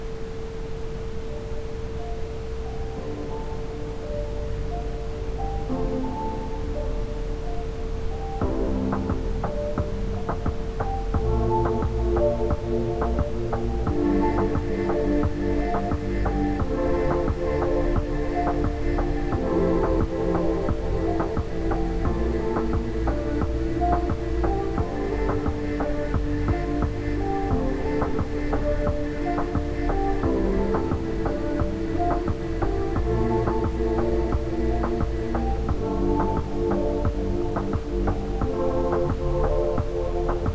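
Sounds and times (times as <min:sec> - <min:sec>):
ambient music for chakra meditation: 0:00.0 - 0:40.5.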